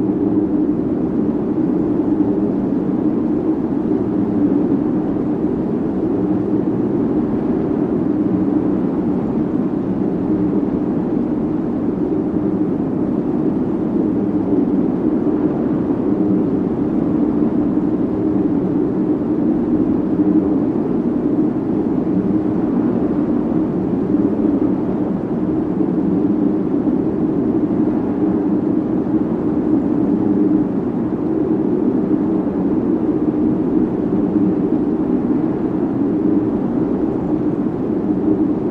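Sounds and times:
deep low rumbling wind-like rush: 0:00.0 - 0:38.6.

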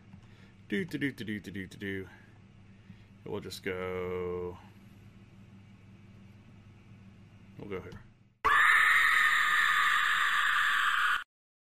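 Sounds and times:
speech: 0:00.7 - 0:02.2, 0:03.2 - 0:04.7, 0:07.6 - 0:08.1
porg scream sound effect: 0:08.5 - 0:11.2.

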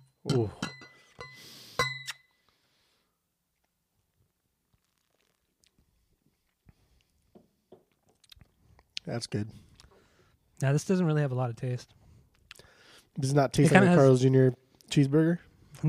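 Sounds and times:
two glasses of beer clinking in a toast: 0:00.0 - 0:02.2
speech: 0:00.3 - 0:00.7, 0:09.1 - 0:09.7, 0:10.6 - 0:12.0, 0:13.2 - 0:15.8.

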